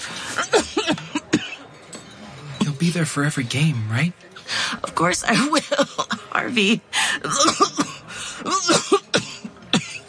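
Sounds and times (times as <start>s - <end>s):
woman coughing: 0.4s - 1.7s, 5.3s - 6.6s, 7.2s - 10.0s
speech: 2.8s - 4.3s, 5.0s - 8.9s.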